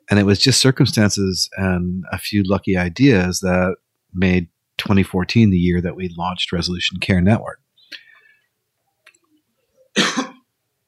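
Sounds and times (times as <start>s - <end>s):
speech: 0.1s - 7.6s
single loud cough: 10.0s - 10.4s.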